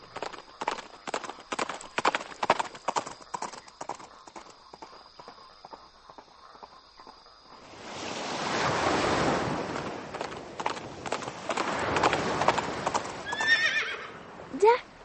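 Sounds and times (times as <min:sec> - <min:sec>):
horse's hooves clip-clopping: 0:00.0 - 0:07.3, 0:09.6 - 0:13.7
sea waves washing: 0:07.5 - 0:15.0
horse neighing: 0:13.2 - 0:14.2.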